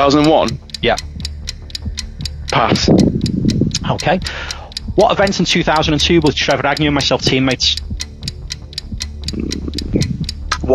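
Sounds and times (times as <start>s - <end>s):
speech: 0.0s - 1.1s, 2.5s - 3.2s, 3.8s - 7.9s
clock ticking as a quiz timer: 0.0s - 10.7s.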